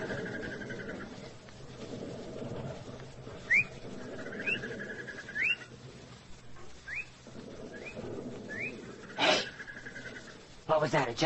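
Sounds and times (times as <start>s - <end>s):
steady low rumble: 0.0s - 11.2s
bird mating call at a river crossing: 3.4s - 5.7s, 6.8s - 8.9s
speech: 10.8s - 11.2s.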